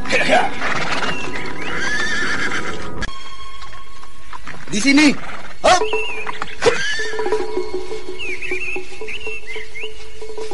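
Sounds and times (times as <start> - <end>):
horse hooves clip-clopping: 0.0 - 10.5
tired horse whinnying: 0.4 - 3.1, 6.5 - 7.4
speech: 4.7 - 6.1.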